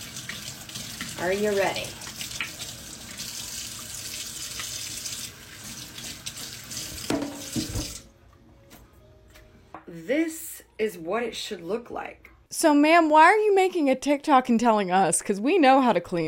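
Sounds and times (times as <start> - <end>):
hot water running from a tap into a sink: 0.0 - 8.1
speech: 1.2 - 2.0, 10.0 - 16.2.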